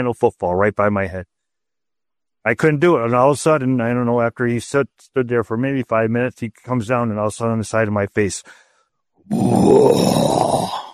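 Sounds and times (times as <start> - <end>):
speech: 0.0 - 1.3, 2.4 - 8.6, 9.2 - 10.9
human voice imitating breathing outside a tent: 9.3 - 10.9.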